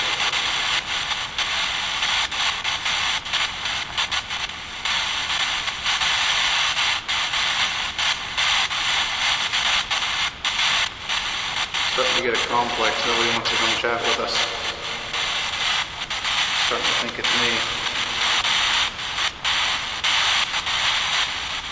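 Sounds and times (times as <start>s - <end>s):
steady loud hiss: 0.0s - 21.7s
speech: 12.6s - 14.6s, 16.7s - 17.9s
faint shuffling footsteps in a locker room: 14.4s - 15.9s.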